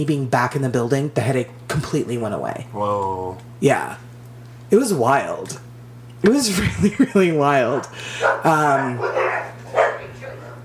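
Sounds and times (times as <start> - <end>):
speech: 0.0 - 4.0, 4.7 - 9.5
steady low electrical hum: 0.0 - 10.6
laughter: 6.5 - 8.2
dogs barking: 7.6 - 10.6.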